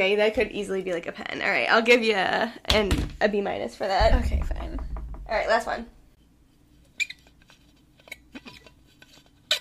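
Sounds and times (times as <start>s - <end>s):
speech: 0.0s - 6.0s
plastic water bottle squeaking and creaking: 6.9s - 9.5s.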